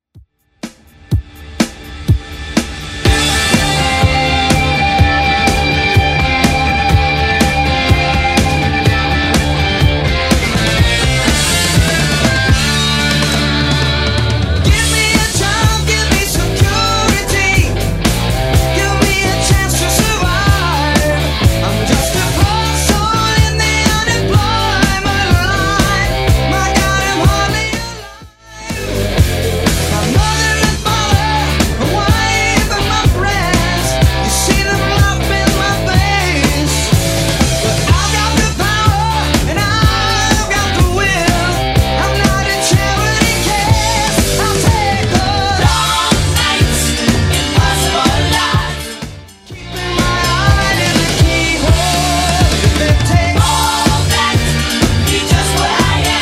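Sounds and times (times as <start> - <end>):
1970s rock drum beat: 0.2 - 56.2.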